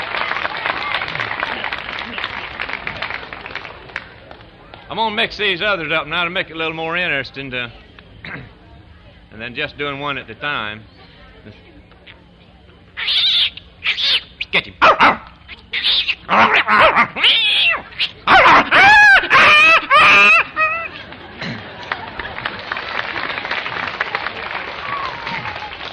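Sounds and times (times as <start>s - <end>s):
laughter: 0.7s - 3.9s, 18.1s - 25.9s
speech: 4.9s - 8.5s, 9.4s - 11.7s, 14.5s - 15.2s, 16.3s - 17.4s
cats yowling and screeching in a scuffle: 13.0s - 14.3s, 15.5s - 20.9s
cats hissing: 13.0s - 21.0s.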